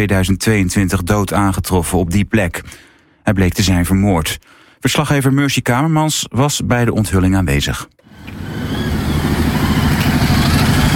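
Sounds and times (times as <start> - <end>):
speech: 0.0 - 8.9
group of about 25 motorcycles arriving at Neeltje Jans: 8.2 - 10.9.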